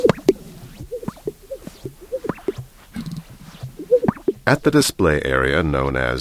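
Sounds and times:
Greater Sage-Grouse wings scraping against flanks: 0.0 - 4.6
male Greater Sage-Grouse popping and gurgling in lek display: 0.0 - 4.7
speech: 4.5 - 6.1.

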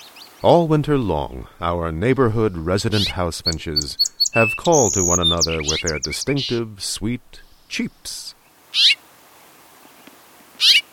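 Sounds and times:
speech: 0.4 - 9.0, 10.6 - 10.8
Spotted Towhee mewing cat-like call note: 2.9 - 6.6, 8.7 - 9.0, 10.6 - 10.9.

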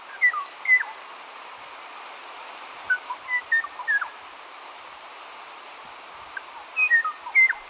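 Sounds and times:
steady hiss: 0.0 - 7.6
Kauai o'o flute-like whistled song: 0.1 - 0.9, 2.9 - 4.1, 6.8 - 7.6.

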